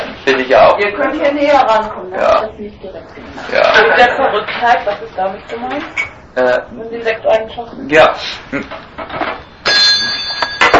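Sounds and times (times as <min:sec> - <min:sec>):
speech: 0:00.3 - 0:09.3
bell ringing after being moved by hand: 0:09.6 - 0:10.7.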